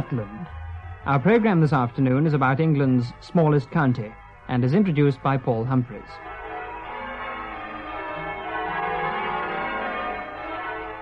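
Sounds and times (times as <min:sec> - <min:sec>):
speech: 0:00.0 - 0:06.3
church bells pealing: 0:00.0 - 0:11.0.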